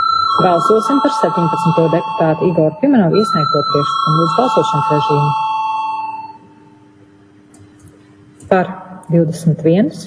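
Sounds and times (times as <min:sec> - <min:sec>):
bell rung in a parliament chamber to call a vote: 0:00.0 - 0:06.6
speech: 0:00.4 - 0:05.5, 0:08.5 - 0:10.0.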